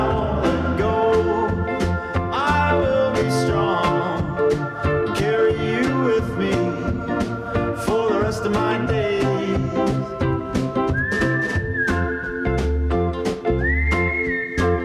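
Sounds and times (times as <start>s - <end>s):
busy instrumental music with a steady drumbeat: 0.0s - 14.8s
person whistling a tune: 0.0s - 14.8s.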